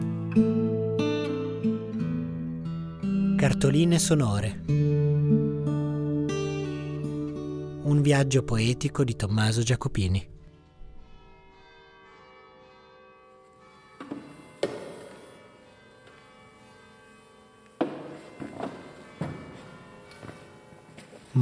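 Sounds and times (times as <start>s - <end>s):
church bells ringing in a sanctuary: 0.0s - 21.4s
speech: 0.4s - 0.6s, 3.4s - 4.8s, 8.0s - 10.3s
thuds and taps: 14.0s - 15.2s, 17.8s - 19.6s.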